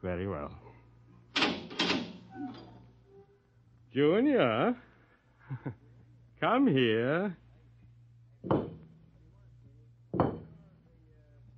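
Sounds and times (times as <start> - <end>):
speech: 0.0 - 0.7, 3.9 - 4.9, 5.5 - 5.8, 6.4 - 7.4, 8.4 - 8.8
door latch and handle clunks: 1.3 - 2.7
door creaking as it swings open: 1.3 - 3.4.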